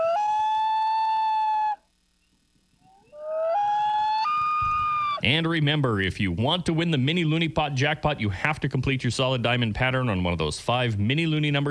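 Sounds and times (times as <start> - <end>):
loon call sound effect in a bingo game: 0.0 - 1.9, 2.8 - 5.3
speech: 5.2 - 11.7.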